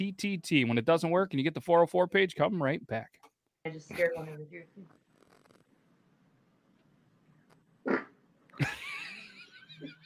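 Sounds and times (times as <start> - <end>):
speech: 0.0 - 5.0, 8.6 - 8.8
woman farting: 7.8 - 8.2
laughter: 8.6 - 10.0.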